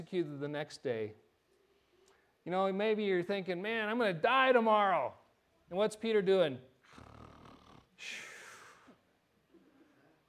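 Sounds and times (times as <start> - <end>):
speech: 0.0 - 1.2, 2.4 - 7.1, 8.0 - 8.3
man imitating a snore: 6.9 - 8.0.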